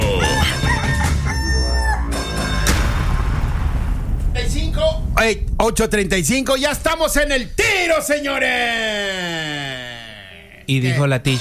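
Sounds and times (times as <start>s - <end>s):
rooster crowing: 0.0s - 2.6s
heavy booming low rumble: 2.6s - 8.9s
speech: 5.2s - 9.3s, 10.7s - 11.3s.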